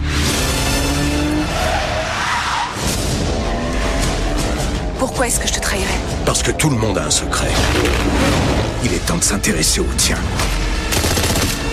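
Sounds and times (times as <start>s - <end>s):
car engine roar: 0.0s - 8.9s
car tires skidding and squealing: 0.1s - 4.6s
booming action-movie trailer music: 2.7s - 11.7s
speech: 5.2s - 10.6s.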